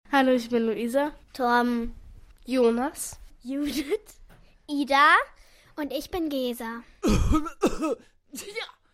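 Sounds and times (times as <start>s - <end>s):
speech: 0.2s - 8.8s
rough coughs: 7.0s - 8.8s.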